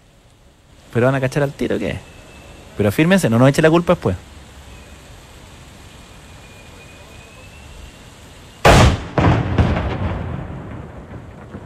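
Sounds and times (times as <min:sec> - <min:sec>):
speech: 0:00.9 - 0:02.1, 0:02.8 - 0:04.3
noon cannon blast echoing across a city: 0:08.6 - 0:11.6.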